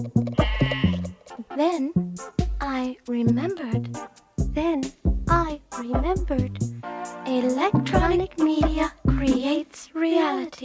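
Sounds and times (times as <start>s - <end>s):
person imitating sheep bleating: 0.3s - 1.2s
speech: 1.6s - 10.6s.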